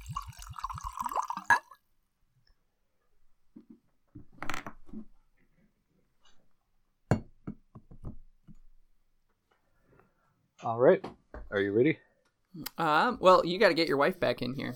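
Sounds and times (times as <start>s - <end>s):
Scotch glugging into a glass: 0.0s - 1.8s
speech: 10.6s - 14.7s.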